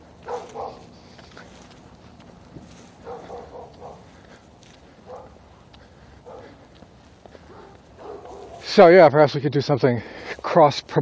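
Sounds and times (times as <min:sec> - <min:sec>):
dogs barking: 0:00.0 - 0:01.6, 0:02.7 - 0:08.8
speech: 0:08.8 - 0:11.0.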